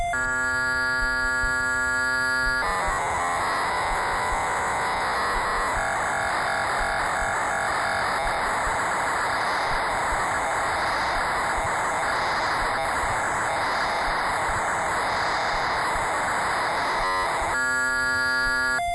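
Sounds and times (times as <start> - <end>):
Poly 800 mk II synthesizer: 0.2 - 18.9.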